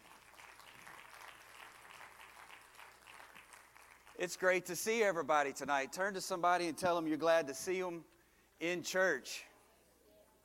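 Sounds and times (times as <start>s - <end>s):
church audience clapping hands: 0.0s - 4.7s
speech: 4.2s - 9.5s.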